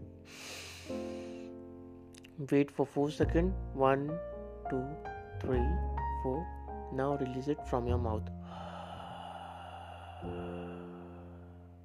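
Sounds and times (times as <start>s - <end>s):
quiet sustained musical backdrop: 0.0s - 11.8s
long steady breath drawn in through the nose in a breathing exercise: 0.3s - 1.6s, 8.4s - 11.8s
speech: 2.4s - 8.4s, 10.2s - 10.6s.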